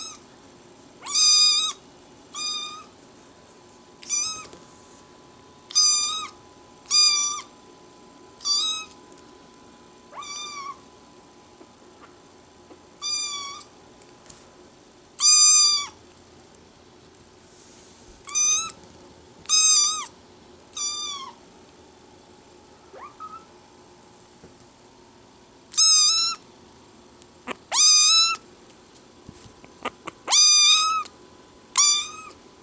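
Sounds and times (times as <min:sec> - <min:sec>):
tiny kittens meowing: 0:01.1 - 0:01.8, 0:02.3 - 0:02.9, 0:04.0 - 0:04.5, 0:05.7 - 0:07.5, 0:08.4 - 0:08.9, 0:10.1 - 0:10.8, 0:13.0 - 0:13.7, 0:15.2 - 0:16.0, 0:18.3 - 0:18.8, 0:19.5 - 0:20.1, 0:20.7 - 0:21.4, 0:22.9 - 0:23.5, 0:25.7 - 0:26.4, 0:27.5 - 0:28.4, 0:29.9 - 0:31.1, 0:31.8 - 0:32.4.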